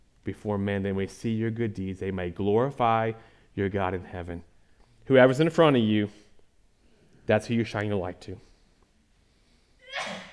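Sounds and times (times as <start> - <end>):
speech: 0.2 - 4.5, 5.1 - 6.2, 7.3 - 8.5
person sneezing: 9.8 - 10.3.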